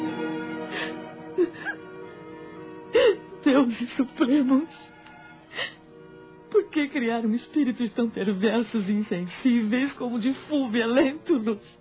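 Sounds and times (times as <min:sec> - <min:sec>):
woman sobbing deeply in her bedroom: 0:00.7 - 0:01.8, 0:02.9 - 0:04.8, 0:05.5 - 0:05.8
speech: 0:03.6 - 0:05.0, 0:06.8 - 0:11.7.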